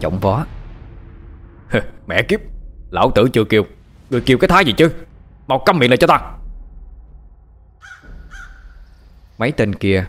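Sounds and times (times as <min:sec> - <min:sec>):
speech: 0:00.0 - 0:00.6, 0:01.7 - 0:06.4, 0:09.4 - 0:10.0
low rumbling background: 0:00.0 - 0:10.0
wild crows cawing as they fly overhead: 0:07.8 - 0:09.2.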